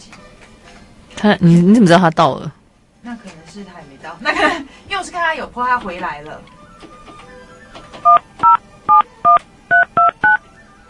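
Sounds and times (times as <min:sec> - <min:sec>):
speech: 0:01.2 - 0:06.6, 0:08.0 - 0:08.6
phone keypad dual-tone beeps as a call is dialed: 0:08.0 - 0:10.4.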